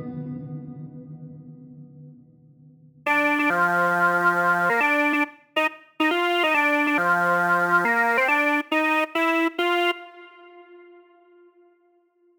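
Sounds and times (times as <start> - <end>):
jazz lead melody: 3.1 - 11.0.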